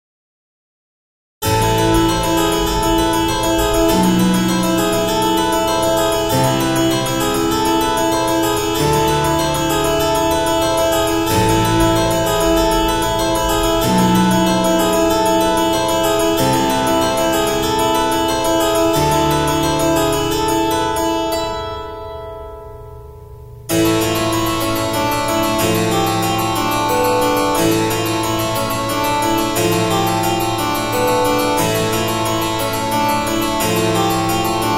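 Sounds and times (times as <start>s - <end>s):
chromatic minor scale: 1.4s - 34.7s.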